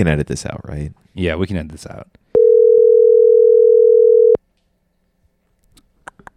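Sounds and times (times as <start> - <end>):
speech: 0.0 - 2.2
electronic ringback tone from an outgoing phone call: 2.4 - 4.4.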